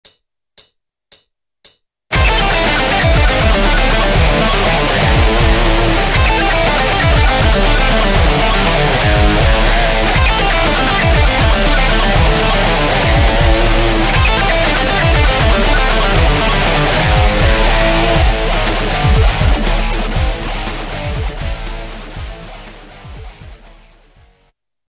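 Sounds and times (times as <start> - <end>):
pentatonic solo in sixteenth notes: 2.1 - 24.0.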